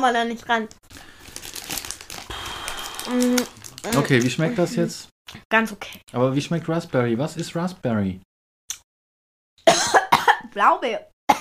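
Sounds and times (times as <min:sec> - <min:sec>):
speech: 0:00.0 - 0:01.1, 0:03.1 - 0:08.3, 0:10.6 - 0:11.3
plastic wrapper crinkling as trash is put into a bin: 0:00.9 - 0:04.4.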